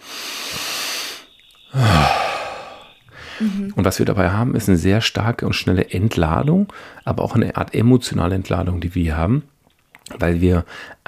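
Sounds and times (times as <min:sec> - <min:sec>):
long airy inhale: 0:00.0 - 0:03.6, 0:06.7 - 0:07.0, 0:10.7 - 0:11.0
speech: 0:01.7 - 0:02.2, 0:03.4 - 0:09.5, 0:10.1 - 0:11.0
voiced sigh through the open mouth: 0:01.7 - 0:03.8.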